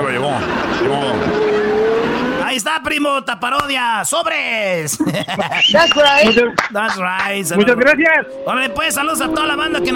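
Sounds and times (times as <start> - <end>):
stolen car tires squealing: 0.0 - 2.5, 7.6 - 9.9
stolen car engine roaring: 0.0 - 2.7, 7.2 - 9.9
speech: 2.8 - 9.9
laughter: 4.9 - 7.0.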